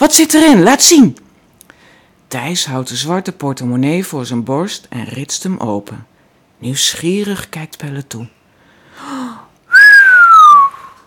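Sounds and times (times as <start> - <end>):
speech: 0.0 - 1.2, 2.3 - 8.4
person whistling in disbelief: 9.7 - 11.0.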